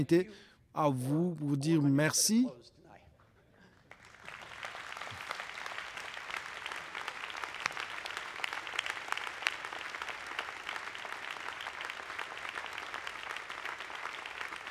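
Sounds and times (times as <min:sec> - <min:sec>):
speech: 0:00.0 - 0:02.8
audience standing and applauding: 0:03.7 - 0:14.6.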